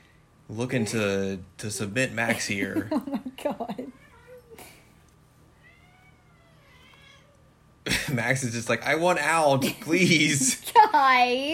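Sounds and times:
speech: 0:00.5 - 0:03.8, 0:08.1 - 0:11.5
cats fighting, growling and yowling: 0:03.7 - 0:04.9, 0:05.5 - 0:07.6.

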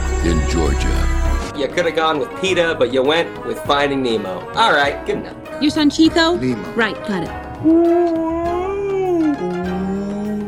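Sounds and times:
speech: 0:00.2 - 0:08.4
person's voice imitating a whale call: 0:07.6 - 0:10.4.

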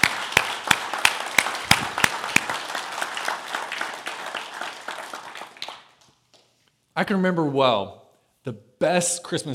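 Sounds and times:
church audience applauding: 0:00.0 - 0:06.1
speech: 0:07.0 - 0:09.5.

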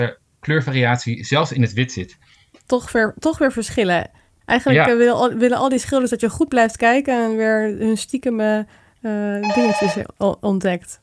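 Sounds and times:
speech: 0:00.0 - 0:11.0
doorbell ringing with a bright electronic tone: 0:09.4 - 0:10.0.

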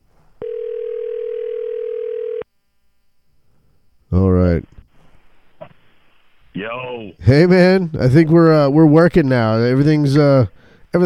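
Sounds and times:
telephone tone on an outgoing call: 0:00.4 - 0:02.5
speech: 0:07.2 - 0:11.0.

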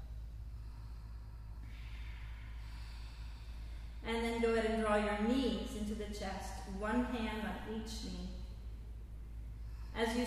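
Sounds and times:
throaty yoga breathing: 0:00.0 - 0:04.0, 0:08.9 - 0:10.2
low steady hum: 0:00.0 - 0:10.2
speech: 0:04.1 - 0:08.4, 0:10.0 - 0:10.2.

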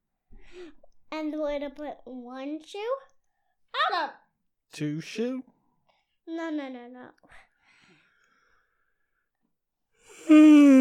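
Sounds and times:
speech: 0:01.1 - 0:03.1, 0:03.7 - 0:05.6, 0:06.3 - 0:07.4, 0:10.1 - 0:10.7
person yawning into a microphone: 0:10.1 - 0:10.7.

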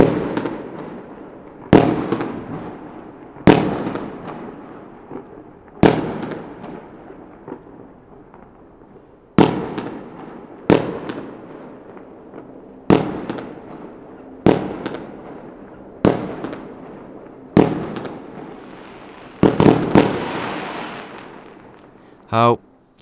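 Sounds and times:
New Year's Eve fireworks bursting: 0:00.0 - 0:22.0
speech: 0:22.3 - 0:23.0.

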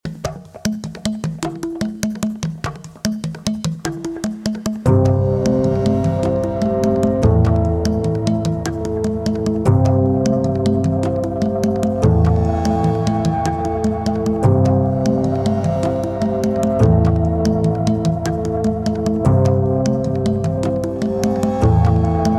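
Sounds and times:
percussion: 0:00.0 - 0:22.3
bass chords: 0:04.9 - 0:22.3.

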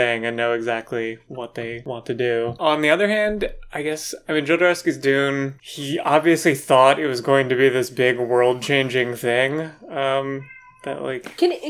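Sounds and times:
speech: 0:00.0 - 0:11.6
cat meowing loudly: 0:10.2 - 0:11.1
cat yowling and chattering: 0:10.4 - 0:10.9.

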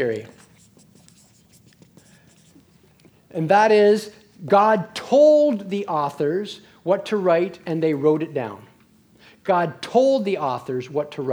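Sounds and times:
speech: 0:00.0 - 0:00.4, 0:03.3 - 0:08.7, 0:09.5 - 0:11.3
scratching of writing on a board during a class: 0:00.0 - 0:03.2
low hiss: 0:00.0 - 0:11.3.

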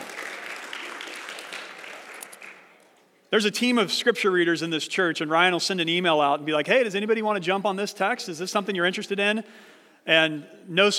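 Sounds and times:
audience applause: 0:00.0 - 0:02.8
speech: 0:03.3 - 0:10.9.

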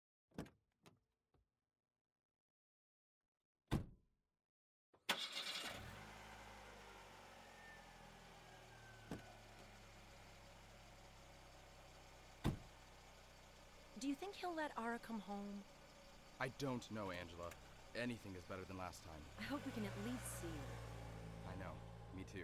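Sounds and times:
car engine cranking, starting and idling: 0:05.1 - 0:22.4
car door closing: 0:12.4 - 0:12.7
speech: 0:14.0 - 0:15.8, 0:16.4 - 0:22.4.

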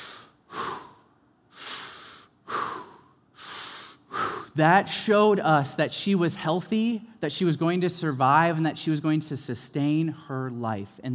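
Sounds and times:
voice imitating a newborn baby's first deep breath: 0:00.0 - 0:04.6
speech: 0:04.6 - 0:11.1.

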